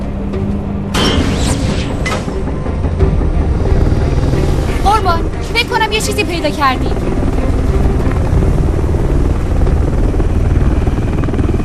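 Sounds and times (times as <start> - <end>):
helicopter rotor thrumming: 0.0 - 11.6
speech: 6.0 - 7.2.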